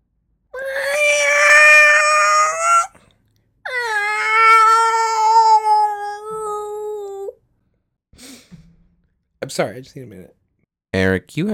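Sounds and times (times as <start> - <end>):
cat yowling: 0.6 - 3.0, 3.7 - 7.3
speech: 9.6 - 10.4, 11.2 - 11.5.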